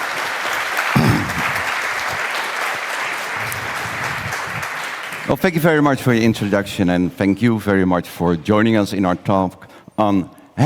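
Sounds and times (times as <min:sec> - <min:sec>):
audience applause for a speaker at a talk on ethical hacking: 0:00.0 - 0:05.6
speech: 0:05.3 - 0:10.6.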